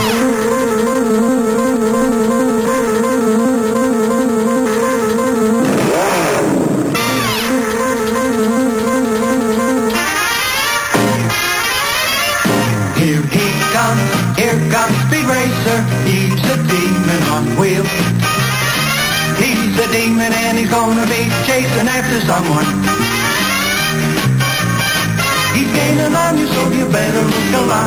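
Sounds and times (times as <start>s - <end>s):
loud energetic cartoon theme song: 0.0s - 27.8s.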